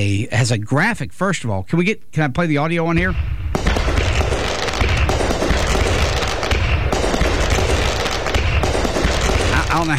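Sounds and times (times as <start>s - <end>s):
speech: 0.1s - 3.6s
fireworks exploding in a dense barrage with booms and crackling: 2.9s - 9.9s.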